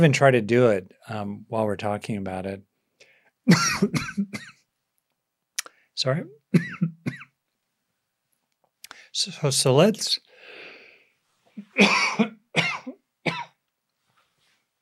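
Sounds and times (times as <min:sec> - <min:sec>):
speech: 0:00.0 - 0:02.7, 0:03.4 - 0:04.6, 0:06.0 - 0:07.2, 0:09.2 - 0:10.3, 0:11.6 - 0:13.4
person coughing: 0:03.5 - 0:04.6, 0:06.5 - 0:07.3, 0:11.6 - 0:13.6
breathy exhale: 0:10.3 - 0:11.2.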